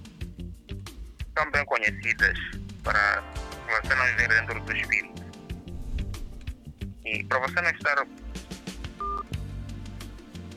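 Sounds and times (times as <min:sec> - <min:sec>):
speech: 0:01.4 - 0:05.2, 0:07.1 - 0:08.5
telephone dialing tone: 0:09.0 - 0:09.4.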